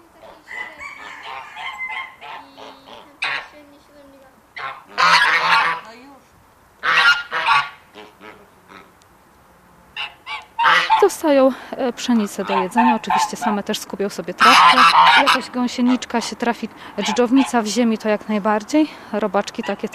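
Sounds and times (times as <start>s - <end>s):
geese honking in a farmyard: 0.0s - 3.6s, 4.5s - 6.1s, 6.8s - 9.0s, 9.9s - 11.3s, 12.2s - 13.7s, 14.4s - 16.4s, 17.0s - 17.8s, 19.5s - 19.9s
ducks quacking in a farmyard: 0.0s - 3.8s, 4.5s - 6.1s, 6.8s - 9.0s, 9.9s - 11.4s, 12.2s - 13.8s, 14.4s - 17.9s, 19.4s - 19.9s
hens clucking in a farmyard: 0.0s - 6.0s, 6.8s - 9.0s, 9.9s - 19.9s
speech: 11.2s - 19.9s.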